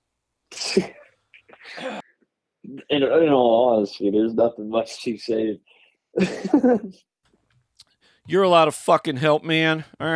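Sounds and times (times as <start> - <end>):
man coughing hard: 0.5 - 2.1
speech: 0.8 - 1.0, 2.7 - 7.1, 8.3 - 10.1.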